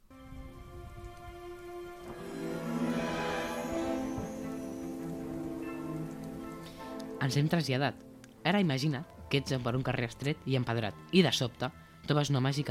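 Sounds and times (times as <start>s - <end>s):
steady rain pattering against walls: 0.5s - 11.6s
faint tonal hums: 2.0s - 6.8s
speech: 7.2s - 12.6s.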